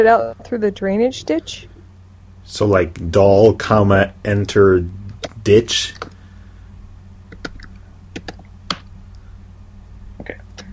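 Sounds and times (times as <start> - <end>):
speech: 0.0 - 1.7, 2.5 - 6.1
low steady hum: 0.0 - 10.7
computer keyboard typing: 7.3 - 8.8.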